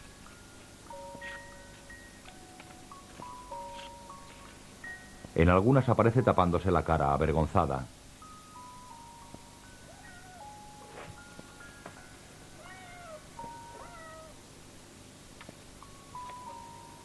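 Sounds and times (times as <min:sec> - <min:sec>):
steady low noise: 0:00.0 - 0:17.0
speech: 0:05.4 - 0:08.0
cat meowing: 0:09.9 - 0:10.8, 0:12.6 - 0:14.4.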